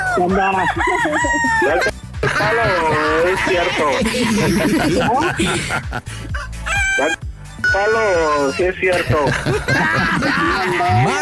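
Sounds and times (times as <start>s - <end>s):
rooster crowing: 0.0s - 1.9s, 6.2s - 7.2s
speech: 0.2s - 11.1s
laughter: 2.2s - 7.1s, 8.2s - 11.1s.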